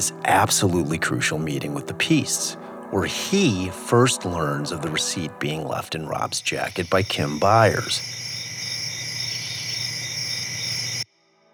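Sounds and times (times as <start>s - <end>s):
speech: 0.0s - 8.3s
dense steady chorus of crickets chirping: 3.6s - 11.0s.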